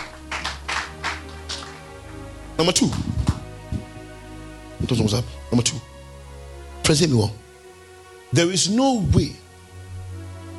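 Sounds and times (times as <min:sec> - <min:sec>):
crowd clapping hands: 0:00.0 - 0:03.5
speech: 0:02.6 - 0:03.2, 0:04.9 - 0:05.9, 0:06.9 - 0:07.4, 0:08.3 - 0:09.4.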